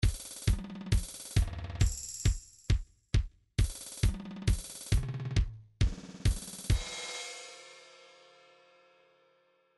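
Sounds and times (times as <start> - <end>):
trance MIDI beat loops: 0.0 - 2.8, 3.6 - 7.0.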